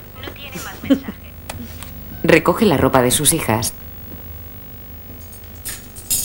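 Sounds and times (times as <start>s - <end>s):
speech: 0.9s - 1.2s, 2.2s - 3.9s
metal cutlery clinking as it is taken from a kitchen drawer: 5.2s - 6.2s.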